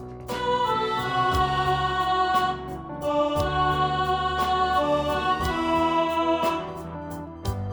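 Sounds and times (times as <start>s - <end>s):
soprano and alto singing in rehearsal: 0.2s - 7.6s.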